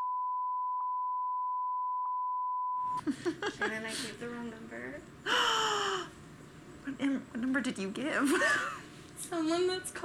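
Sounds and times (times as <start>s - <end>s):
high-pitched censor bleep over a spoken phone number: 0.0s - 3.0s
speech: 3.0s - 6.1s, 6.8s - 10.0s.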